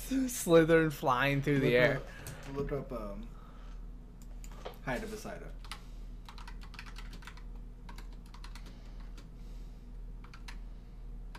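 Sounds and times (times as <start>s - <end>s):
speech: 0.1s - 3.4s, 4.8s - 5.6s
typing on a computer keyboard: 5.6s - 9.3s, 10.2s - 10.6s.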